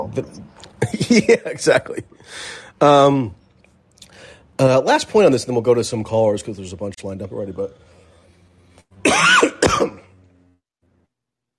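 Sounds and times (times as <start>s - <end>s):
speech: 0.2s - 3.4s, 4.6s - 7.9s
person coughing: 9.0s - 10.2s.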